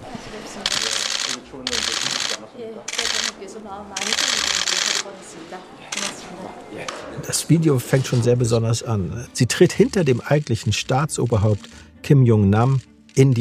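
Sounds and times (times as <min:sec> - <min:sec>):
indistinct voices murmuring: 0:00.0 - 0:07.8
photographers' camera shutters clicking at a press event: 0:00.6 - 0:03.4, 0:04.0 - 0:05.1, 0:05.9 - 0:06.3, 0:10.0 - 0:11.8
speech: 0:07.3 - 0:13.3.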